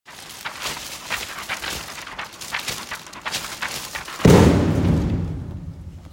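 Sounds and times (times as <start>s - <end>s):
thunderstorm: 4.2s - 6.1s.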